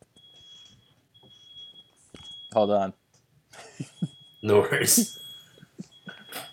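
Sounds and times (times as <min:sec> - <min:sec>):
faint room noise: 0:00.0 - 0:06.5
smoke detector in an apartment beeping from cooking too hot: 0:00.1 - 0:06.5
speech: 0:02.5 - 0:03.0, 0:03.8 - 0:05.2.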